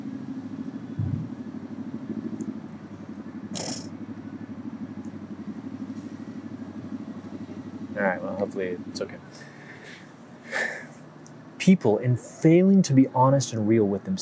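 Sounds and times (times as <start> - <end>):
motorcycle engine droning: 0.0 - 14.2
brief hiss of noise: 3.6 - 3.9
speech: 8.0 - 9.5, 11.6 - 14.2.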